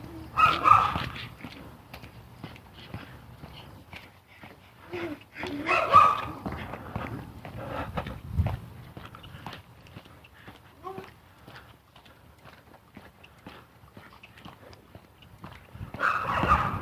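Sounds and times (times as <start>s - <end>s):
small terrier-type dogs barking: 0.3s - 1.6s, 5.4s - 6.8s, 15.9s - 16.8s
pattering and clicking dog steps on pavement: 0.3s - 16.8s.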